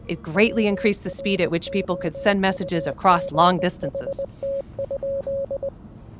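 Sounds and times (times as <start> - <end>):
speech: 0.1 - 5.8
telegraph sending Morse code beeps: 0.4 - 5.7.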